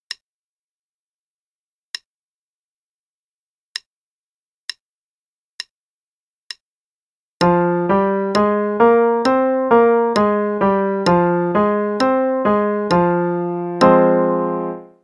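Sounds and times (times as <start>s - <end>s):
F minor musical pattern: 7.4s - 15.0s.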